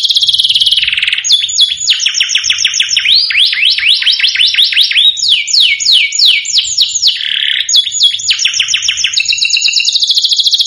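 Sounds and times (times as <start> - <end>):
domestic canary singing whistled notes: 0.0 - 10.6.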